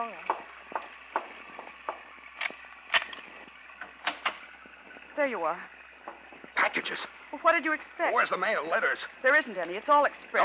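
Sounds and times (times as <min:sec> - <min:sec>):
latch clicks and clunks on an aircraft tail compartment hatch: 0:02.4 - 0:04.4
speech: 0:05.2 - 0:05.8, 0:06.7 - 0:10.4.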